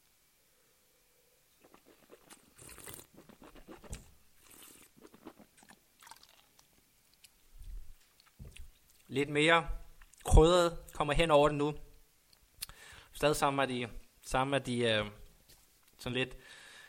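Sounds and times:
person sipping a drink: 0:01.5 - 0:08.8
swallowing: 0:01.6 - 0:06.7
speech: 0:09.2 - 0:09.8, 0:10.4 - 0:11.9, 0:13.2 - 0:15.2, 0:16.0 - 0:16.6.

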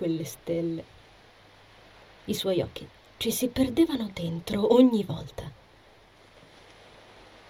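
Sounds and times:
speech: 0:00.0 - 0:01.0, 0:02.3 - 0:05.6
ocean surf breaking on the shore: 0:06.2 - 0:07.4.

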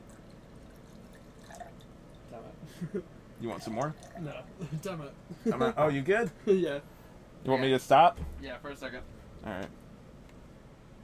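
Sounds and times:
liquid poured into a glass: 0:00.0 - 0:02.3, 0:03.6 - 0:04.5
speech: 0:02.4 - 0:09.8.

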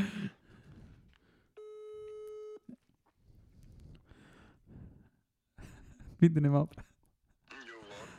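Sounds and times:
breathing: 0:00.0 - 0:01.6, 0:03.2 - 0:05.4
phone call ringing tone while waiting to connect: 0:01.6 - 0:02.7
speech: 0:06.2 - 0:06.9.

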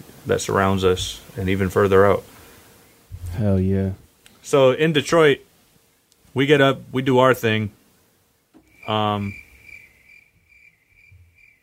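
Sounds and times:
speech: 0:00.2 - 0:02.3, 0:03.4 - 0:05.5, 0:06.4 - 0:07.8, 0:08.8 - 0:09.4
crickets chirping: 0:08.6 - 0:11.6.

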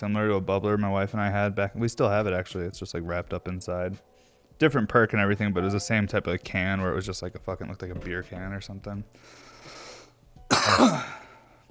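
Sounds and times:
speech: 0:00.0 - 0:09.8, 0:10.6 - 0:11.2
person coughing harshly: 0:10.5 - 0:11.4.

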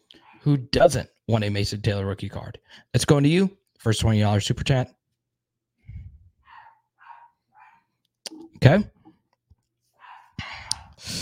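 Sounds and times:
speech: 0:00.4 - 0:05.0, 0:08.6 - 0:09.0
dog barking: 0:06.5 - 0:07.9, 0:10.0 - 0:10.4.

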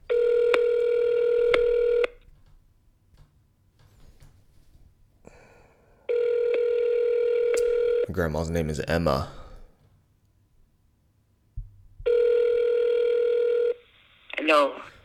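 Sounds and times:
telephone ringback tone on a call: 0:00.1 - 0:02.2, 0:06.1 - 0:08.1, 0:12.1 - 0:13.8
speech: 0:08.2 - 0:09.4.

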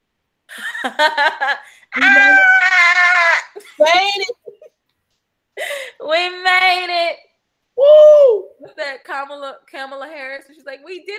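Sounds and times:
speech: 0:00.8 - 0:02.9, 0:06.0 - 0:11.1
person screaming: 0:02.0 - 0:04.2.

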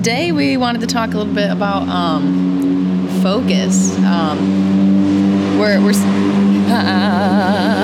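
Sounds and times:
speech: 0:00.0 - 0:02.6, 0:03.2 - 0:07.8
car traffic rumbling outdoors: 0:00.0 - 0:07.8
car whooshing past: 0:02.4 - 0:06.7.

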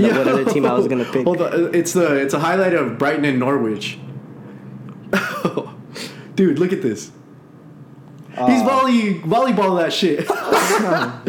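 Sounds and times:
laughter: 0:00.0 - 0:01.4, 0:10.2 - 0:11.2
speech: 0:00.0 - 0:04.1, 0:05.1 - 0:07.2, 0:08.4 - 0:11.2
loud sneeze: 0:10.4 - 0:11.2.

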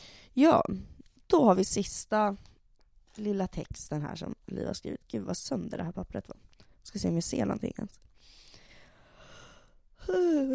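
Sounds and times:
speech: 0:00.4 - 0:02.5, 0:03.2 - 0:08.1, 0:10.1 - 0:10.5
person yawning: 0:10.0 - 0:10.5.

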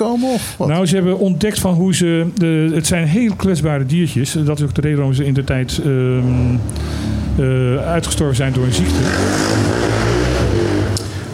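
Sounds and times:
speech: 0:00.0 - 0:10.1
motorcycle engine revving: 0:06.1 - 0:11.3.

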